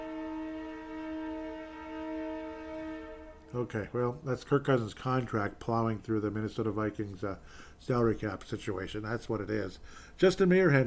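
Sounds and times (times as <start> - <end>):
passing train horn blaring: 0.0 - 3.9
speech: 3.5 - 10.8.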